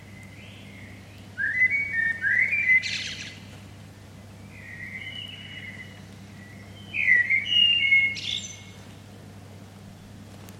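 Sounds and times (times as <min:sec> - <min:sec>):
common blackbird Turdus merula singing: 0:00.0 - 0:03.5, 0:04.4 - 0:08.8.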